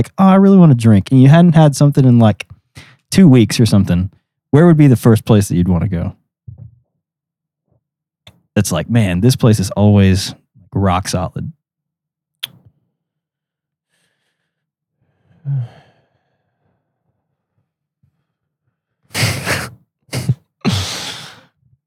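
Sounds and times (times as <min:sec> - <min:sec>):
speech: 0:00.0 - 0:06.2, 0:08.6 - 0:11.6
heavy breathing with raspy huffs: 0:02.8 - 0:03.1, 0:13.9 - 0:17.0, 0:19.1 - 0:21.6.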